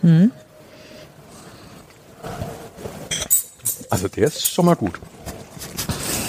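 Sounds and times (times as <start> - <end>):
speech: 0.0 - 0.4, 4.0 - 5.2
low noise: 0.0 - 6.2
wine glasses clinking in a toast: 3.1 - 4.8.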